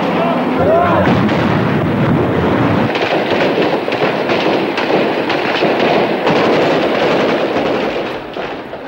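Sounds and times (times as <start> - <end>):
people shouting: 0.2 - 1.4
explosive thuds: 0.6 - 8.8
heavy automatic machine-gun fire: 1.0 - 8.8.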